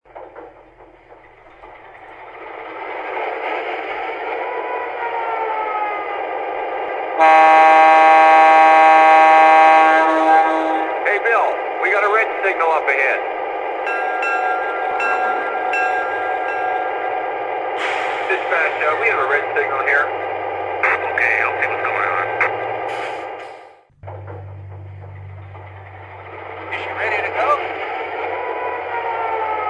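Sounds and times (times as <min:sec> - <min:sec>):
EMD F3 A locomotive: 0:00.0 - 0:29.6.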